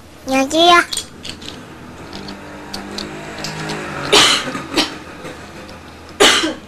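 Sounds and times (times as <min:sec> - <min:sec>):
speech: 0:00.2 - 0:01.1
person coughing from an itchy throat: 0:04.1 - 0:04.9, 0:06.2 - 0:06.6.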